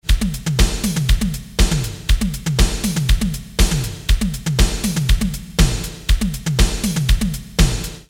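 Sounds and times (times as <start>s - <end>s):
drum: 0.0s - 8.0s.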